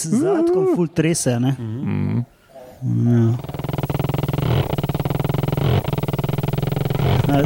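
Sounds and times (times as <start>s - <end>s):
speech: 0.0s - 3.8s
voice imitating a chainsaw engine running and revving: 2.9s - 7.4s.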